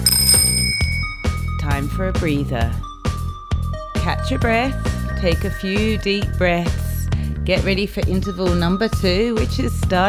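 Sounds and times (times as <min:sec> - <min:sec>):
bicycle bell ringing: 0:00.1 - 0:01.8
speech: 0:02.0 - 0:02.9, 0:04.1 - 0:06.8, 0:07.5 - 0:10.0.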